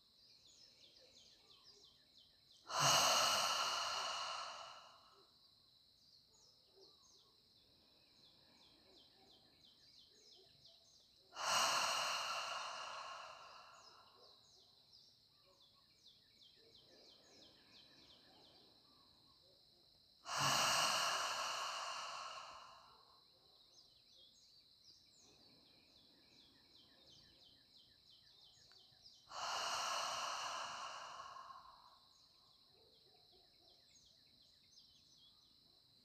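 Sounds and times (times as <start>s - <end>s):
person exhaling deeply through a wide-open mouth in a breathing exercise: 2.7s - 5.0s, 11.4s - 14.0s, 20.3s - 22.9s, 29.3s - 31.8s.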